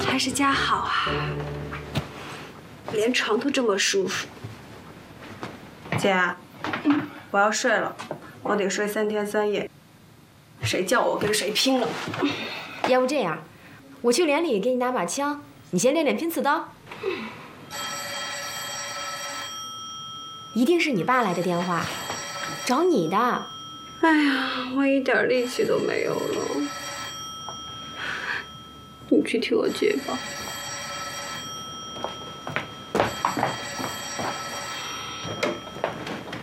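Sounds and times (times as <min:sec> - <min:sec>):
speech: 0:00.2 - 0:01.6, 0:02.9 - 0:04.3, 0:06.0 - 0:09.8, 0:10.6 - 0:17.8, 0:20.6 - 0:22.1, 0:22.7 - 0:26.8, 0:29.1 - 0:30.5
telephone bell ringing: 0:17.7 - 0:36.4.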